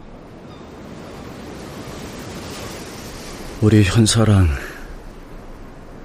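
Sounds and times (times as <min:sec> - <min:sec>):
faint breeze: 0:00.0 - 0:06.0
ocean waves washing on shore: 0:00.0 - 0:06.0
speech: 0:03.6 - 0:04.7.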